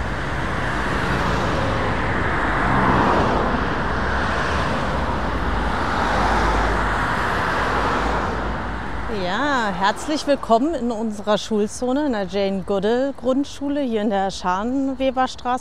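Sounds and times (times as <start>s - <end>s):
cars rushing past on busy four-lane road: 0.0s - 12.3s
speech: 9.2s - 15.6s.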